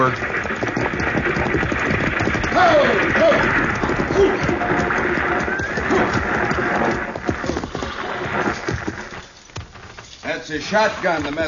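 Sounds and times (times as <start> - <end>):
rumbling movement of six-horse hitch: 0.0 - 11.4
six-horse hitch hooves clopping: 0.0 - 11.4
speech: 0.1 - 0.3, 10.6 - 11.4
horses whinnying: 1.4 - 9.2.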